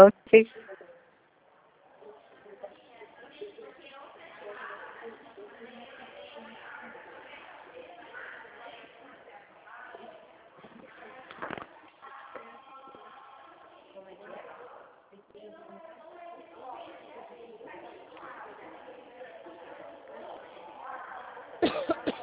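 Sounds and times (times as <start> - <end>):
speech: 0.0 - 0.7
voices and murmur: 0.0 - 1.1, 1.8 - 22.2
single sharp cough: 21.6 - 22.2.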